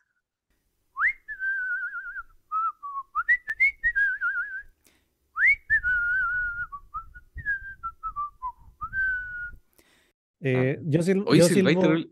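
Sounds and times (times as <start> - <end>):
person whistling a wavering melodic tune: 1.0 - 4.8, 5.4 - 9.6
speech: 10.4 - 12.1.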